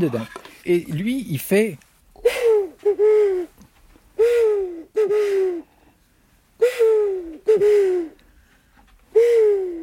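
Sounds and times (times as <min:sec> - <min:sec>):
speech: 0:00.0 - 0:01.9
owl-like hoots blown on a bird call: 0:02.2 - 0:03.6, 0:04.2 - 0:05.7, 0:06.6 - 0:08.2, 0:09.1 - 0:09.8.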